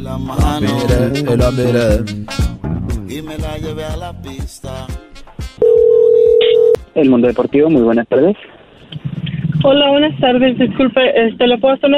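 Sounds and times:
speech: 0:00.1 - 0:02.5, 0:07.0 - 0:08.5, 0:09.6 - 0:11.9
telephone line tone while a number is dialed: 0:05.6 - 0:06.8.

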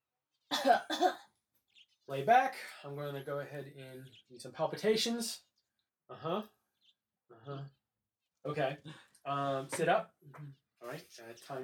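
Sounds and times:
person coughing: 0:00.5 - 0:01.2
speech: 0:00.6 - 0:01.3, 0:02.1 - 0:05.5, 0:06.1 - 0:06.6, 0:07.3 - 0:07.8, 0:08.4 - 0:11.6.

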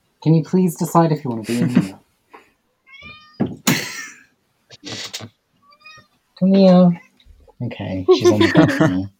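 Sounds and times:
speech: 0:00.2 - 0:02.0, 0:06.4 - 0:07.0, 0:07.6 - 0:09.1
laughter: 0:01.4 - 0:02.0, 0:08.1 - 0:09.1
cat yowling: 0:02.9 - 0:03.6.

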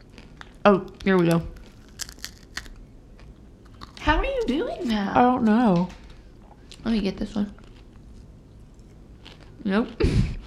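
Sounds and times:
person biting and chewing a crisp chip: 0:00.0 - 0:04.0, 0:07.6 - 0:09.6
speech: 0:00.6 - 0:01.6, 0:04.5 - 0:06.0, 0:06.8 - 0:07.6, 0:09.6 - 0:10.4.

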